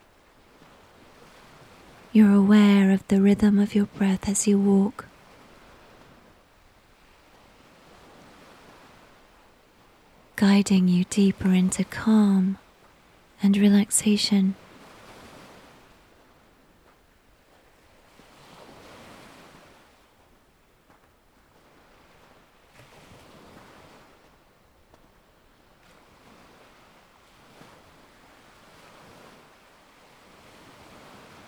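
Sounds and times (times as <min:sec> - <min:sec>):
ocean waves crashing onto the shore: 0:01.1 - 0:06.2, 0:10.4 - 0:12.6, 0:13.4 - 0:14.9
speech: 0:02.1 - 0:05.1, 0:10.5 - 0:12.6, 0:13.4 - 0:14.6.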